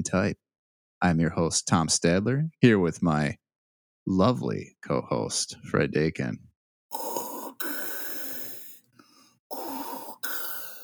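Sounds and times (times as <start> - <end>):
speech: 0.0 - 0.4, 1.0 - 3.4, 4.1 - 7.3
man's heavy hissing breaths through a sleep apnea mask: 6.9 - 10.8.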